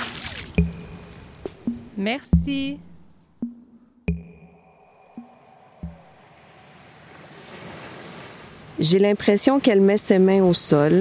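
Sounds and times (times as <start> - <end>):
water stirred with a piece of wood held by a woman: 0.0 - 8.5
piece of wood knocking while stirring water: 0.6 - 4.6, 5.2 - 6.1
speech: 2.0 - 3.6, 8.8 - 10.9.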